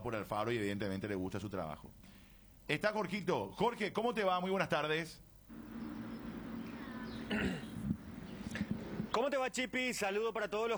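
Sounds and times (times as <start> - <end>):
speech: 0.0 - 5.7, 7.3 - 7.7, 9.1 - 10.7
low steady hum: 5.5 - 9.2
raspy throat clearing: 7.3 - 8.0.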